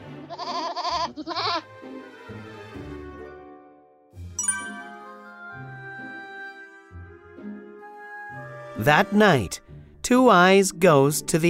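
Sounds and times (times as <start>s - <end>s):
goat bleating in wavering cries: 0.3s - 1.7s
bright chime: 4.4s - 5.2s
speech: 8.8s - 11.4s.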